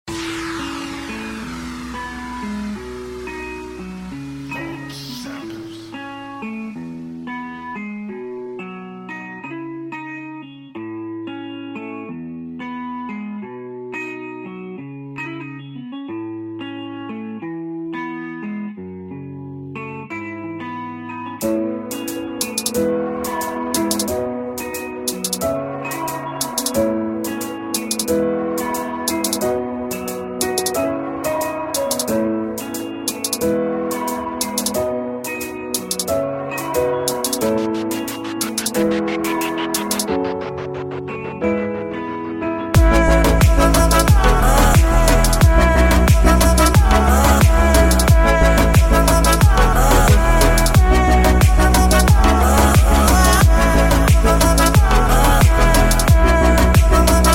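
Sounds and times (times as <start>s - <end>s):
pop chart music on radio: 21.9s - 57.3s.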